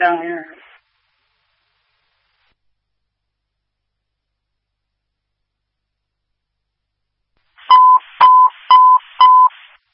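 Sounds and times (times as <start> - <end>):
speech: 0.0 - 0.6
hiss of radio static: 0.0 - 2.6, 7.6 - 9.9
fire dispatch paging tones as short electronic beeps: 7.7 - 9.6.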